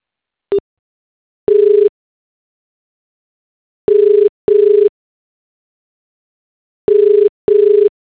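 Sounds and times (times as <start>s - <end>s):
telephone busy tone: 1.5s - 1.9s, 3.9s - 4.9s, 6.9s - 7.9s.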